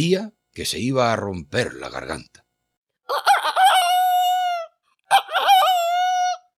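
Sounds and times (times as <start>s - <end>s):
speech: 0.0s - 2.4s, 3.1s - 3.4s
rooster crowing: 3.1s - 6.5s.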